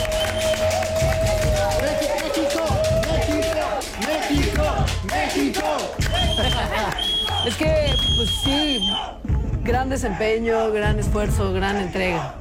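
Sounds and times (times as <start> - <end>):
sustained whistle-like tone: 0.0 - 0.8, 6.0 - 9.2
applause for a national football team: 0.0 - 9.0
crowd cheering: 0.0 - 9.6
speech: 9.7 - 12.3.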